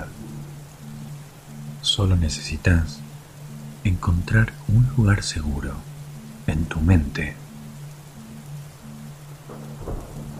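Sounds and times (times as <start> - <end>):
low intermittent humming drone: 0.0 - 10.3
steady falling rain: 0.0 - 10.3
speech: 1.9 - 3.1, 3.8 - 5.9, 6.5 - 7.4
deep thunder rumble: 9.5 - 10.3.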